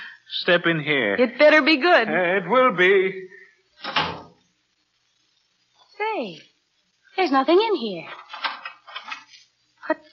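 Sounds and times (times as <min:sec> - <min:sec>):
speech: 0:00.4 - 0:04.1, 0:06.2 - 0:06.5, 0:07.2 - 0:08.4
door pushed shut and locked: 0:03.8 - 0:04.4.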